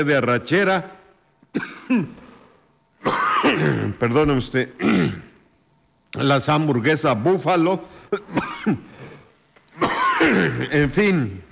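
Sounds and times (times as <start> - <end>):
speech: 0.0 - 2.2, 3.0 - 5.2, 6.1 - 9.1, 9.8 - 11.4
small dry coughs: 1.5 - 2.4, 3.0 - 4.0, 4.8 - 5.4, 8.1 - 8.9, 9.7 - 10.9.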